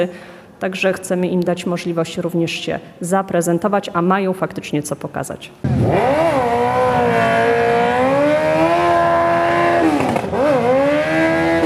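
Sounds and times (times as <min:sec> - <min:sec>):
speech: 0:00.0 - 0:07.3
car engine revving during a burnout: 0:05.6 - 0:11.6
car tires spinning during a burnout: 0:05.6 - 0:11.6.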